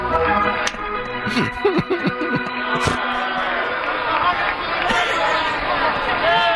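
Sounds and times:
small ballpark crowd murmuring: 0.0 - 6.5
laughter: 1.2 - 6.5
people shouting: 2.3 - 6.5.

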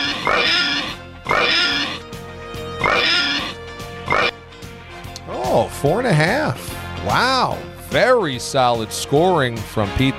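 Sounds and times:
pig oinking: 0.0 - 2.0, 2.8 - 4.4
musical backing: 1.0 - 10.1
speech: 5.8 - 10.1.

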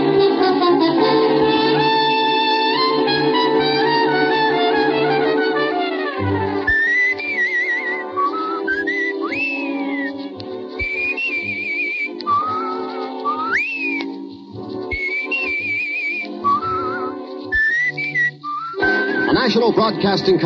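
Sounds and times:
soft instrumental backing: 0.0 - 20.4
man whistling a jaunty sliding theme tune: 6.3 - 19.5
speech: 19.7 - 20.4.

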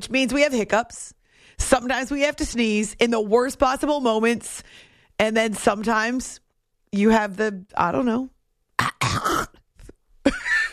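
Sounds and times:
speech: 0.0 - 9.2
person clearing throat: 8.8 - 10.0.

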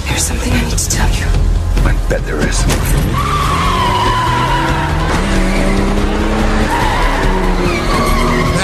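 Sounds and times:
speech: 0.2 - 3.4
engines roaring in a film car chase: 2.4 - 8.6
tires screeching and skidding in a film car chase: 2.6 - 8.6.

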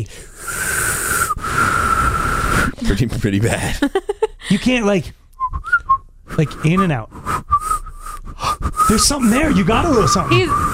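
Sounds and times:
speech: 0.0 - 0.6, 2.8 - 5.2, 6.4 - 7.2, 8.9 - 10.7
breathy failed attempt at whistling: 0.2 - 2.8, 5.4 - 10.7.

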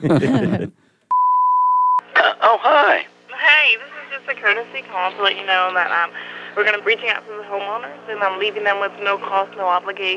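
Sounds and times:
speech: 0.0 - 0.8, 2.2 - 10.1
beeper beep starting a phone call: 1.1 - 2.0.

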